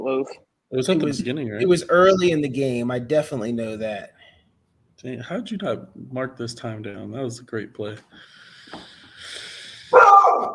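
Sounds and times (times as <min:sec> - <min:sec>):
speech: 0:00.0 - 0:04.2, 0:05.0 - 0:08.9
dog barking: 0:09.9 - 0:10.5.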